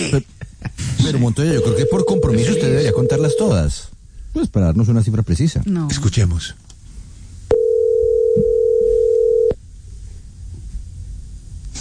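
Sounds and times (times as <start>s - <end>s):
speech: 0.0s - 0.4s, 1.0s - 6.7s
telephone dial tone after a call is hung up: 1.6s - 3.5s, 7.5s - 9.6s.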